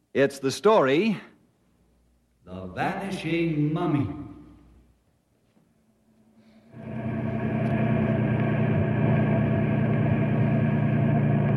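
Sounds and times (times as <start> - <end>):
speech: 0.2 - 1.3, 2.5 - 4.2
car engine rumbling as the car drives up to a caravan of trucks: 6.8 - 11.5.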